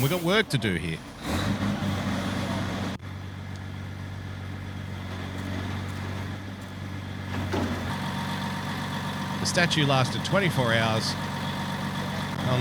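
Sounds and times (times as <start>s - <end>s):
speech: 0.0s - 1.6s, 9.5s - 11.3s
truck engine running: 0.0s - 12.5s.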